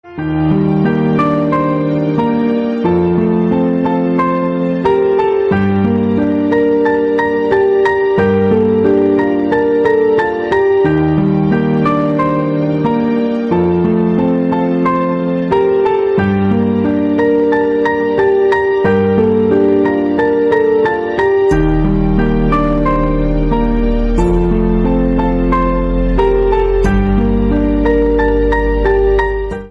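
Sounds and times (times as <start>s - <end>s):
piano music ringtone: 0.0s - 29.6s.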